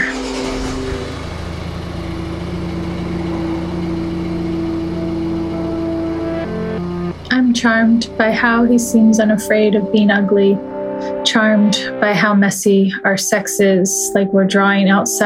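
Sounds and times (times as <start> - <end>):
car engine idling: 0.0 - 11.1
speech: 7.5 - 15.2.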